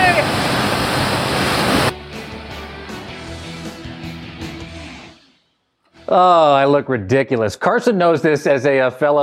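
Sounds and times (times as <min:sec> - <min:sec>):
artificial freshwater wave crashing at a desert wave park: 0:00.0 - 0:01.9
speech: 0:06.1 - 0:09.2.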